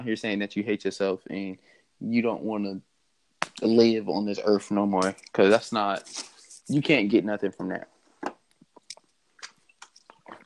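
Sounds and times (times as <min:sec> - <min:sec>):
speech: 0:00.0 - 0:02.9, 0:03.6 - 0:07.9
person sipping and swallowing water: 0:08.8 - 0:10.4.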